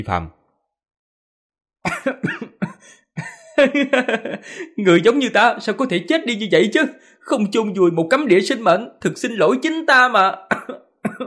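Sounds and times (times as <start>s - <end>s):
speech: 0.0s - 0.4s, 2.0s - 2.4s, 3.6s - 11.2s
teenage boy coughing harshly, coughing up blood: 1.9s - 3.4s, 10.5s - 11.2s
laughter: 1.9s - 5.1s.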